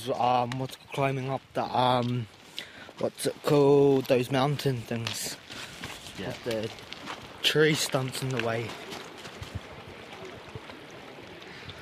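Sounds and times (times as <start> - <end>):
speech: 0.0 - 5.4, 6.2 - 8.8
river water flowing: 6.8 - 11.7.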